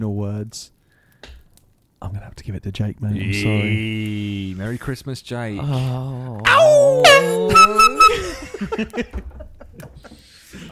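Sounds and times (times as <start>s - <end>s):
speech: 0.0s - 0.8s, 2.0s - 7.9s, 8.6s - 10.7s
people laughing and chuckling: 6.8s - 10.7s
air horn blaring: 7.5s - 8.2s.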